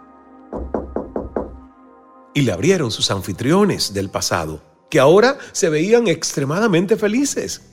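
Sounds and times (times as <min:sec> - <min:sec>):
young man knocking on the wooden door of a house: 0:00.5 - 0:01.7
speech: 0:02.4 - 0:07.7.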